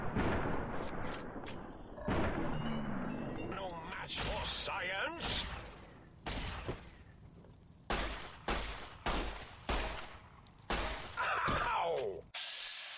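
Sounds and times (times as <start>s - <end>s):
video game noise: 0.0s - 12.9s
shattering crackling burst: 4.1s - 11.2s.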